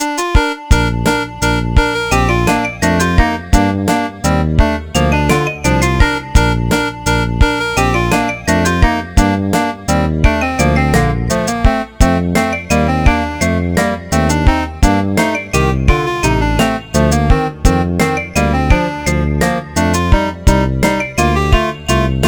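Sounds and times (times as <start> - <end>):
SNES video game music: 0.0 - 22.2.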